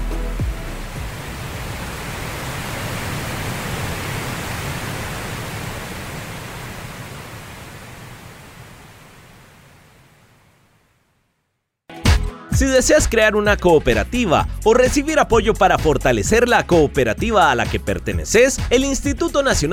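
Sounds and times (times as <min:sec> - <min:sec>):
steady broadband pink noise hiss: 0:00.0 - 0:11.4
speech: 0:12.6 - 0:19.7.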